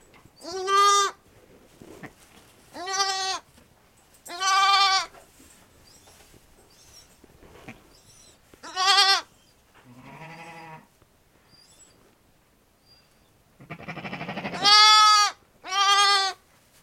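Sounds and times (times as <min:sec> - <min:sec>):
bottle-fed lamb crying: 0:00.4 - 0:01.2, 0:02.8 - 0:03.4, 0:04.3 - 0:05.1, 0:07.7 - 0:10.9, 0:13.6 - 0:16.4.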